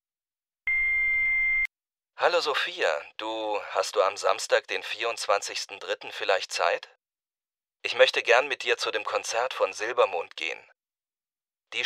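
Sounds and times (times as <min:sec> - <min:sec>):
answering machine beep: 0:00.7 - 0:01.7
speech: 0:02.2 - 0:07.0, 0:07.8 - 0:10.7.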